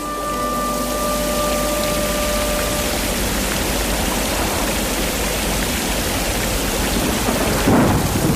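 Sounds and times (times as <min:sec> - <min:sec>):
dense steady rain in a heavy thunderstorm: 0:00.0 - 0:08.3
thunder rumbling and cracking in a heavy thunderstorm: 0:02.7 - 0:08.3.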